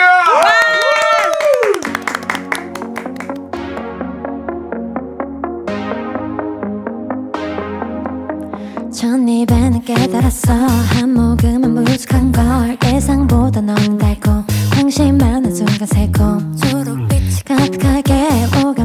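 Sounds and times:
rhythmic hand claps keeping time with live music: 0.1 - 3.6
upbeat alternative song performed live with bass and synth: 1.8 - 18.8.

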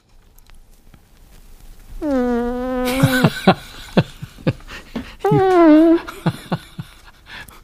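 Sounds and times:
fart sound effect: 2.0 - 3.3, 5.2 - 6.1
laughter: 2.9 - 4.6, 5.2 - 7.2
speech: 3.0 - 3.7.

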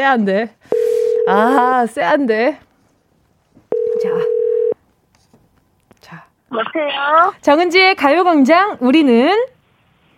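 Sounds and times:
speech: 0.0 - 2.6, 6.1 - 9.6
telephone dialing tone during call connection: 0.7 - 1.4, 3.7 - 4.8.

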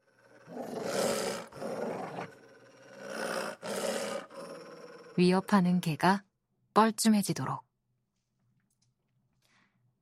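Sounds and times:
large dog growling and snarling: 0.0 - 5.6
speech: 5.2 - 7.6.

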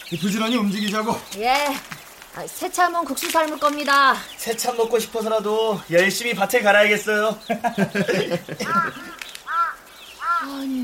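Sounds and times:
speech: 0.1 - 9.2
laughter: 7.3 - 9.2
crow cawing: 8.4 - 10.8.

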